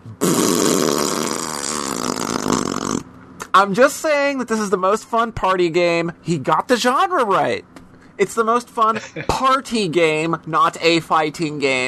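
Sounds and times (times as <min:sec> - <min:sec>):
raspberry-style fart noise made with the mouth: 0:00.0 - 0:03.1
speech: 0:03.6 - 0:11.8.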